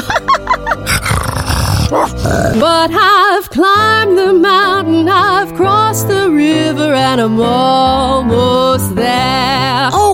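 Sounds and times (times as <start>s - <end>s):
dogs growling: 0.8s - 2.8s
speech: 2.6s - 10.1s.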